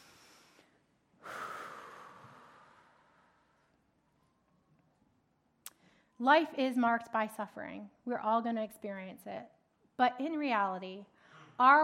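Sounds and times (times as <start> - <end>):
deep cleansing breath taken together: 0.0 - 3.8, 11.2 - 11.6
speech: 6.2 - 11.8.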